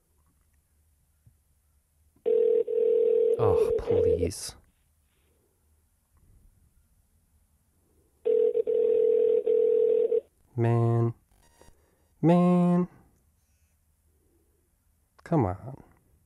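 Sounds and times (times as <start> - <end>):
electronic ringback tone over a telephone line: 2.3 - 4.2, 8.3 - 10.2
speech: 3.4 - 4.6, 10.6 - 11.2, 12.2 - 13.0, 15.3 - 15.8.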